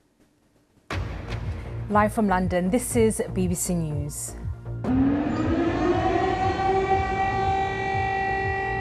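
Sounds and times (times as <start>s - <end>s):
speech: 1.9s - 5.2s
air raid siren wailing outdoors: 4.8s - 8.8s.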